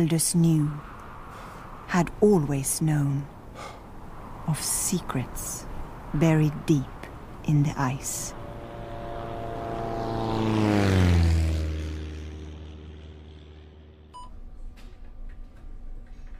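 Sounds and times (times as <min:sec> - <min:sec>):
speech: 0:00.0 - 0:00.9, 0:01.9 - 0:03.8, 0:04.5 - 0:08.4
aircraft engine droning as the plane flies by: 0:00.0 - 0:16.3
faint beeps: 0:14.2 - 0:14.4.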